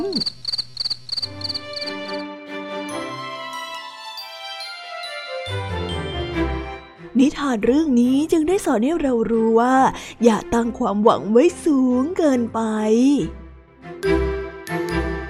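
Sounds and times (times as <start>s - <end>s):
speech: 0.0s - 0.4s, 7.2s - 13.4s
cricket chirping: 0.0s - 2.2s
bright tinkling musical passage: 1.8s - 7.2s, 14.0s - 15.2s.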